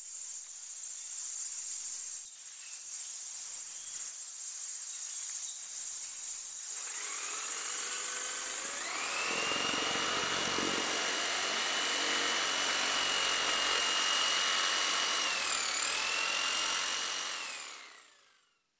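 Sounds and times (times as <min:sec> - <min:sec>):
loud steady mechanical buzz with high whine: 0:06.7 - 0:18.2.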